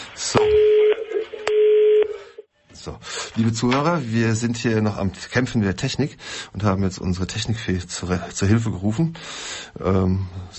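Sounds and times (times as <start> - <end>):
speech: 0.3 - 0.7, 3.4 - 10.5
telephone ringing in electronic tone bursts: 0.4 - 2.5.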